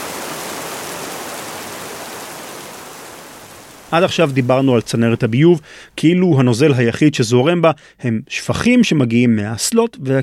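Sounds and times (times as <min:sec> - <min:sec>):
dense rain pouring down: 0:00.0 - 0:05.1
speech: 0:03.9 - 0:10.2.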